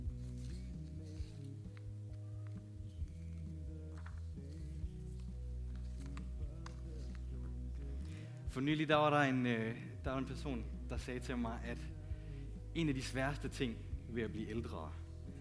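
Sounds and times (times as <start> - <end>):
sheets of paper being shuffled and sorted: 0.2 - 7.6
speech: 8.5 - 11.9, 12.8 - 15.0.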